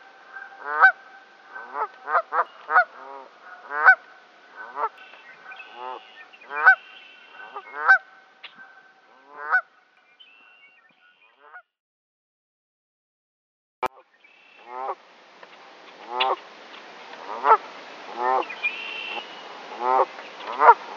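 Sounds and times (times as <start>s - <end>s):
hissy background: 0.0s - 8.6s, 14.1s - 20.9s
Canada goose honking: 0.4s - 4.0s, 4.6s - 5.0s, 5.6s - 9.7s, 16.0s - 16.4s, 17.3s - 19.2s, 19.8s - 20.9s.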